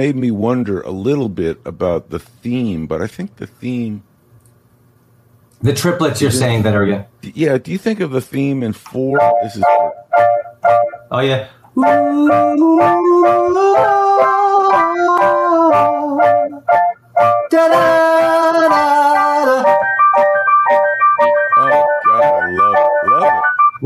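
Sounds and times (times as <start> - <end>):
speech: 0.0 - 4.1, 5.6 - 16.8
cheap sampling keyboard playing a bright bouncy melody: 9.1 - 11.1, 11.8 - 23.8.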